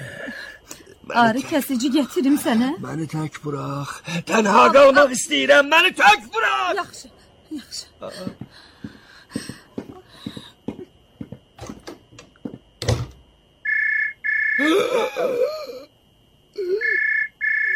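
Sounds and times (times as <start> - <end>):
speech: 1.1 - 8.6, 14.8 - 15.6
telephone ringing with electronic trills: 13.6 - 14.6, 16.8 - 17.7.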